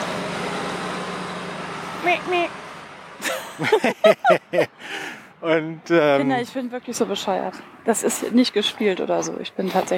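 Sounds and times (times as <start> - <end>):
bus driving past: 0.0 - 9.9
speech: 2.0 - 2.6, 3.2 - 9.9
laughter: 3.2 - 4.9.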